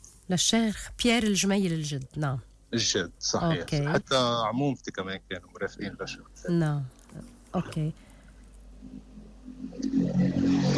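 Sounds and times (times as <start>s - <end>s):
low rumble: 0.0s - 10.4s
speech: 0.3s - 8.1s
car passing by with rushing engine and tire noise: 8.8s - 10.7s.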